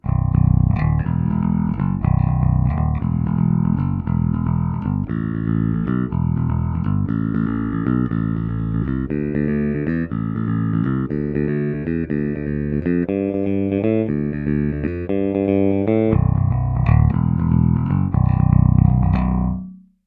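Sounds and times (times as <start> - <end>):
five-string bass guitar with roundwound nickel-plated steel strings played with a pick: 0.0 - 20.0.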